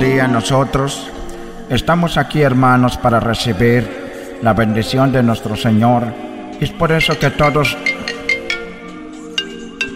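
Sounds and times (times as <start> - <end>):
speech: 0.2 - 8.0
mobile phone ringtone playing a melodic tune: 7.0 - 9.9.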